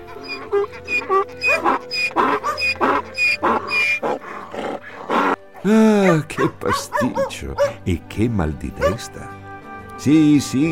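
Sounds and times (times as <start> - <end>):
speech: 0.5 - 4.1, 5.6 - 9.4, 10.0 - 10.7
dog barking and yelping excitedly: 1.4 - 4.2, 6.0 - 7.8, 8.8 - 9.1.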